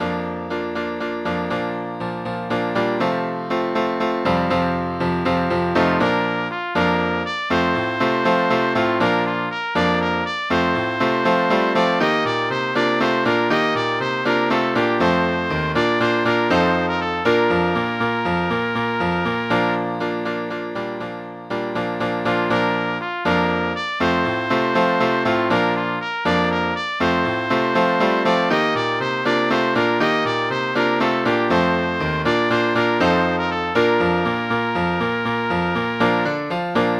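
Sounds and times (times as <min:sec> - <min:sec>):
piano: 0:00.0 - 0:36.9.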